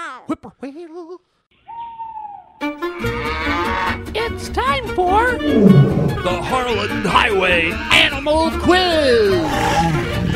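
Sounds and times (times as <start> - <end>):
speech: 0.3 - 1.8, 4.0 - 10.2
owl hooting: 1.6 - 2.6, 5.5 - 6.3.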